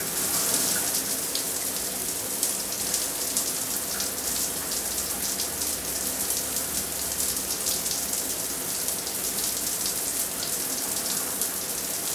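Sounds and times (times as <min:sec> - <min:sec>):
shower running: 0:00.0 - 0:12.1.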